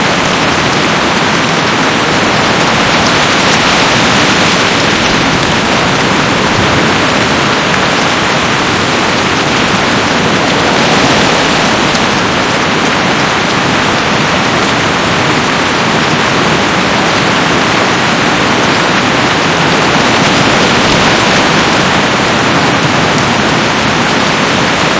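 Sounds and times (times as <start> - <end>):
heavy rain: 0.0 - 24.9.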